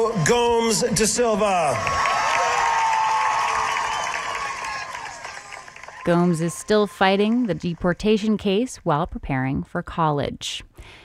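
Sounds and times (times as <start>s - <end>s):
speech: 0.0s - 2.2s, 6.0s - 11.0s
large crowd cheering at graduation: 0.0s - 8.6s
whoops and shouts: 1.8s - 7.2s.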